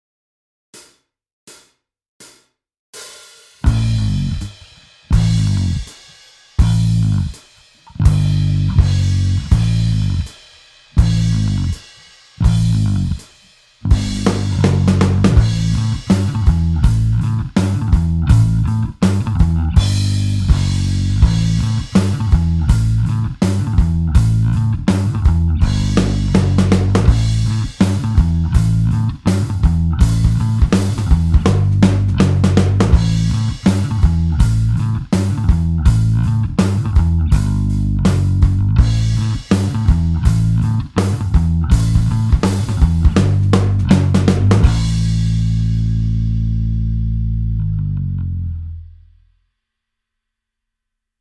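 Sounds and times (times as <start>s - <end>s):
slide guitar rock backing track: 3.6s - 6.0s, 6.6s - 11.8s, 12.4s - 48.5s.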